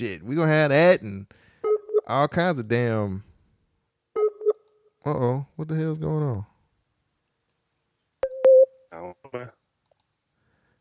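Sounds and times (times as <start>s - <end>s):
speech: 0.0s - 1.5s, 2.1s - 3.3s, 5.0s - 6.5s, 9.0s - 9.6s
sharp electronic beeps on a phone line: 8.2s - 8.8s.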